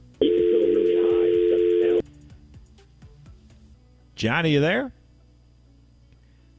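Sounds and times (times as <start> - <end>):
telephone dial tone: 0.2 - 2.0
speech: 4.2 - 5.0.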